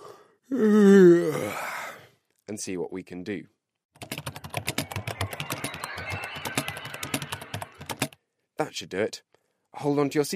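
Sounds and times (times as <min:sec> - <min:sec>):
speech: 0:00.5 - 0:01.6, 0:02.6 - 0:03.6, 0:08.7 - 0:10.3
person yawning: 0:00.5 - 0:02.0.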